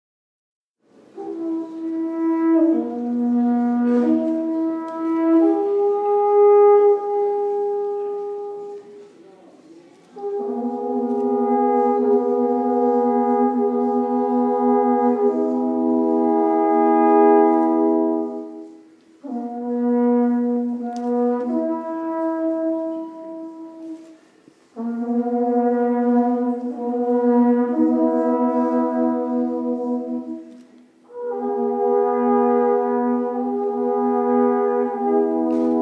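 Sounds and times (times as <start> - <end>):
long wooden trąbita horn blown in a simple melody: 1.0 - 9.2, 10.1 - 35.8.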